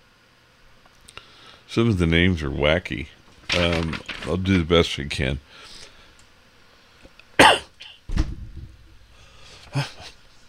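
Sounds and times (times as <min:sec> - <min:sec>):
speech: 0:01.7 - 0:05.7
person coughing harshly: 0:07.4 - 0:08.0, 0:09.7 - 0:10.2.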